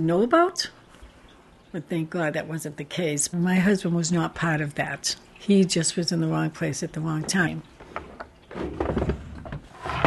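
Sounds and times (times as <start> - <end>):
speech: 0.0 - 0.8, 1.7 - 7.7
rustling and knocking of dresser drawer contents being searched: 7.2 - 10.0
wooden dresser drawer sliding open with a short scrape: 7.9 - 10.0.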